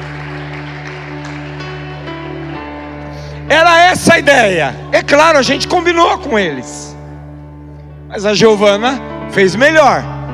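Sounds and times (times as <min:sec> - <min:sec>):
audience applauding: 0:00.0 - 0:02.6
speech: 0:03.5 - 0:06.9, 0:08.1 - 0:10.1.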